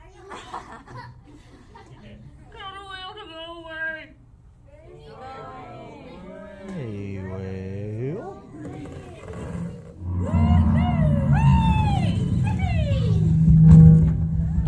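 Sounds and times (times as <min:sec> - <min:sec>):
laughter: 0:00.2 - 0:02.4, 0:06.1 - 0:08.3
long swooping whale calls: 0:08.7 - 0:14.6
deep rumbling background: 0:09.3 - 0:14.6.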